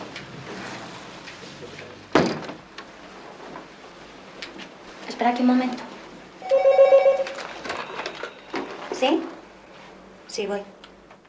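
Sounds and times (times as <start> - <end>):
speech: 5.2 - 5.9, 10.4 - 10.8
telephone ringing: 6.4 - 8.4.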